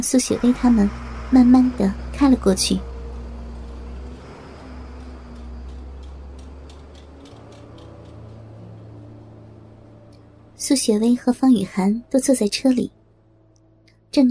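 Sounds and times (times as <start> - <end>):
speech: 0.0 - 2.9, 10.7 - 13.0
vehicle engine rumbling: 0.0 - 13.4
road noise: 0.0 - 14.1
faint rhythmic ticking: 0.2 - 12.9.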